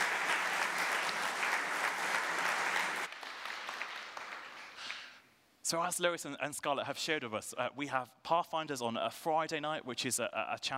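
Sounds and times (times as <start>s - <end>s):
audience applauding for two young girls: 0.0s - 5.2s
speech: 5.7s - 10.7s.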